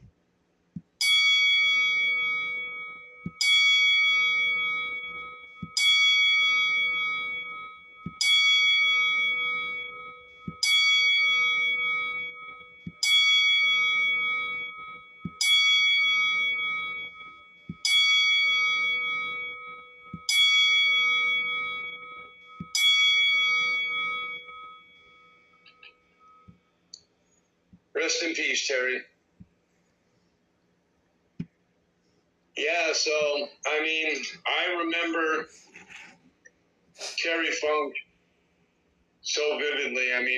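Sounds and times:
bell struck as a memorial salute: 0:01.0 - 0:26.6
speech: 0:28.1 - 0:29.1, 0:33.0 - 0:35.6, 0:37.2 - 0:38.0, 0:39.4 - 0:40.3.

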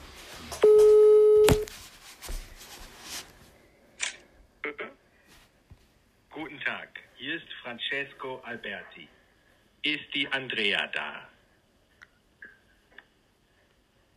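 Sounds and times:
soft rustling: 0:00.0 - 0:03.7
telephone ringing tone of a call being placed: 0:00.6 - 0:01.6
speech: 0:07.7 - 0:09.2, 0:09.8 - 0:11.3.

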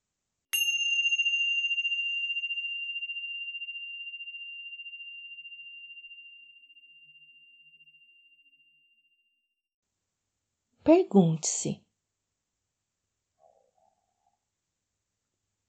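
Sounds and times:
bell struck to begin a meditation practice: 0:00.6 - 0:08.9
speech: 0:10.9 - 0:11.8.

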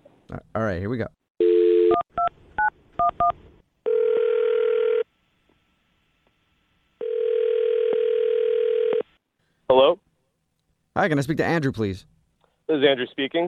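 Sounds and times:
speech: 0:00.3 - 0:01.2, 0:09.7 - 0:10.0, 0:11.0 - 0:12.1, 0:12.7 - 0:13.4
telephone ringing tone: 0:01.4 - 0:02.0, 0:03.8 - 0:05.0, 0:07.0 - 0:09.1.

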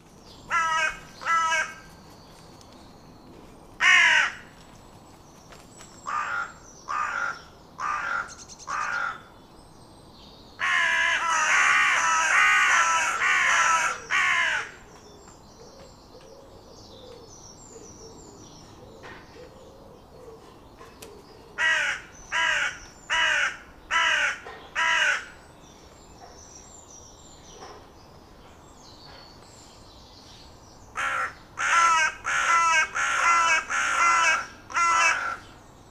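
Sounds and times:
carrion crow harsh croaky caw calls: 0:00.5 - 0:01.8, 0:03.8 - 0:04.5, 0:06.1 - 0:09.3, 0:10.6 - 0:14.8, 0:21.6 - 0:25.4, 0:31.0 - 0:35.5.

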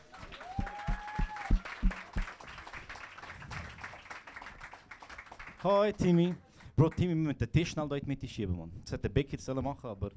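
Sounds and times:
audience cheering: 0:00.0 - 0:04.1
audience applause as a guest is introduced: 0:00.0 - 0:05.7
speech: 0:05.6 - 0:10.1.

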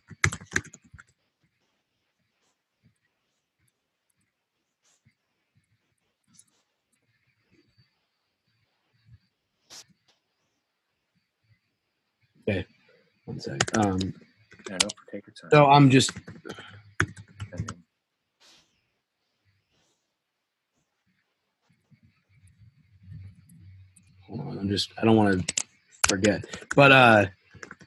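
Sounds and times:
typing on a computer keyboard: 0:00.0 - 0:01.2, 0:13.5 - 0:15.0, 0:15.9 - 0:17.8, 0:25.3 - 0:27.8
speech: 0:12.5 - 0:12.7, 0:13.4 - 0:16.6, 0:24.8 - 0:27.4.

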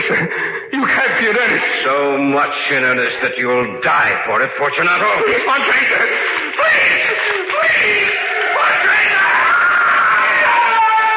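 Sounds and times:
laughter: 0:00.0 - 0:01.7, 0:05.0 - 0:11.1
speech: 0:00.1 - 0:08.2
man screaming in terror: 0:06.6 - 0:11.1.

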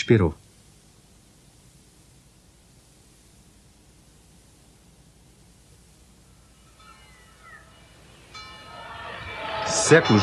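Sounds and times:
faint ambient hum: 0:00.0 - 0:10.2
speech: 0:00.1 - 0:00.4, 0:09.9 - 0:10.2
church bell ringing: 0:06.6 - 0:10.2.

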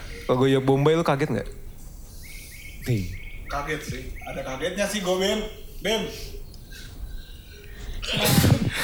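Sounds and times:
speech: 0:00.3 - 0:01.6, 0:02.8 - 0:06.4, 0:08.0 - 0:08.8
person sneezing: 0:08.0 - 0:08.8.

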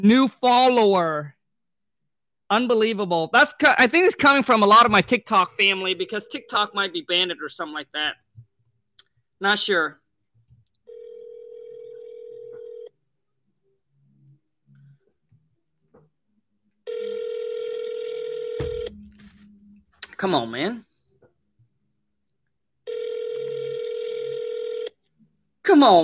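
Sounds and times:
speech: 0:00.0 - 0:01.4, 0:02.5 - 0:08.2, 0:09.4 - 0:10.0, 0:20.2 - 0:20.9, 0:25.6 - 0:26.0
outgoing phone call ringback tone: 0:10.9 - 0:12.9, 0:16.9 - 0:19.0, 0:22.9 - 0:25.0.

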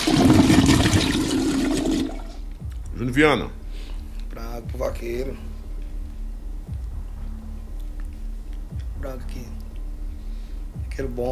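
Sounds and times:
toilet flushing: 0:00.0 - 0:02.4
speech: 0:03.0 - 0:03.6, 0:04.6 - 0:05.5, 0:09.0 - 0:09.6, 0:11.0 - 0:11.2.

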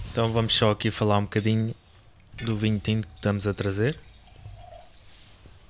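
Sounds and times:
speech: 0:00.2 - 0:01.8, 0:02.4 - 0:04.1
water pouring into a wine-stained glass: 0:03.2 - 0:05.0.

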